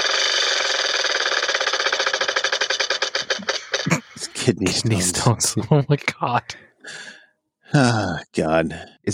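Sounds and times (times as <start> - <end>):
prize wheel spun in a party-style game clicking: 0.0 - 3.9
speech: 4.5 - 6.7, 7.7 - 9.1.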